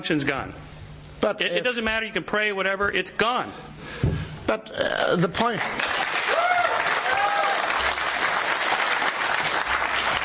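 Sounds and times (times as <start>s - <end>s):
speech: 0.0s - 6.4s
audience clapping: 5.5s - 10.2s
audience whoops and cheers: 6.2s - 8.0s.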